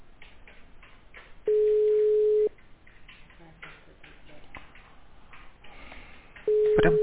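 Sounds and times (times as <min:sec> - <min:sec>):
steady telephone ringback tone: 0:01.5 - 0:02.5, 0:06.5 - 0:07.0.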